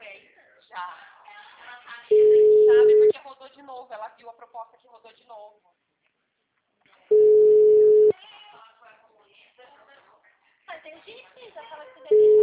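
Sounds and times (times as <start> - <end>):
steady telephone tones from a call that fails to go through: 2.1 - 3.1, 7.1 - 8.1, 12.1 - 12.4
speech: 3.6 - 5.8.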